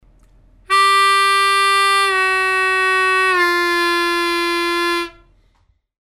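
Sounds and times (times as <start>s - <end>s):
harmonica note bending: 0.7s - 5.4s.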